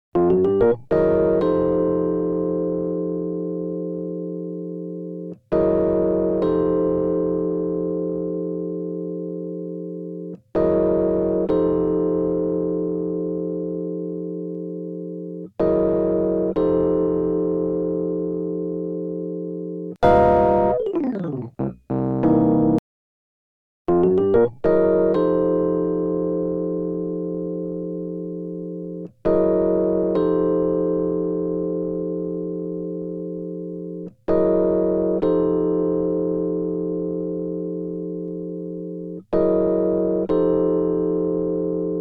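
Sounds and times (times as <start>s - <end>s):
Rhodes electric piano: 0.2s - 22.8s, 23.9s - 41.9s.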